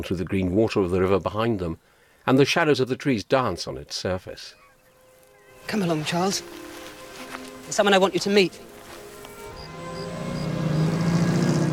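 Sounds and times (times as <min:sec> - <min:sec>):
speech: 0:00.0 - 0:04.6, 0:05.6 - 0:06.6, 0:07.7 - 0:08.7
motor car engine droning on a road through wheat fields: 0:09.5 - 0:11.7.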